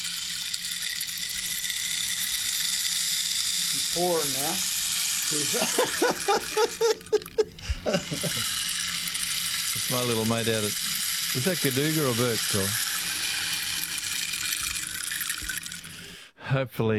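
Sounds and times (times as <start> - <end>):
rain stick hissing patter of tumbling beads: 0.0 - 16.2
speech: 3.9 - 4.7, 5.3 - 8.6, 9.8 - 12.8, 16.5 - 16.9
laughter: 5.4 - 8.5.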